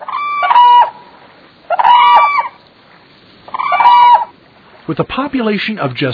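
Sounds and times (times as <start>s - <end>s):
whooping cranes trumpeting along the Platte River in central Nebraska: 0.0s - 2.6s, 3.4s - 4.4s
speech: 4.9s - 6.1s.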